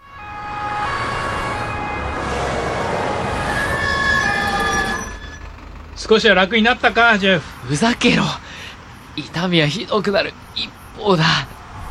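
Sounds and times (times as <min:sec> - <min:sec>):
ambulance siren wailing: 0:00.0 - 0:08.4
engine and road noise: 0:00.0 - 0:11.8
speech: 0:06.1 - 0:08.4, 0:09.2 - 0:11.6.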